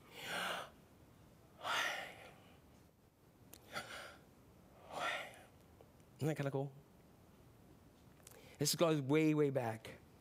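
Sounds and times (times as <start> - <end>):
person breathing slowly in a breathing exercise: 0.0 - 0.8, 1.6 - 2.6, 3.6 - 4.2, 4.8 - 5.5
speech: 6.2 - 6.9, 8.6 - 10.0.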